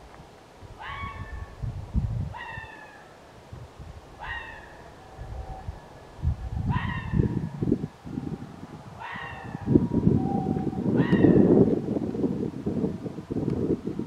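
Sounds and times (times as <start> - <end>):
continuous low rumbling noise: 0.0 - 14.0
red fox giving hoarse downward-sliding barks: 0.8 - 1.5, 2.3 - 3.1, 4.2 - 5.9, 6.6 - 7.5, 9.0 - 9.8, 10.6 - 11.6.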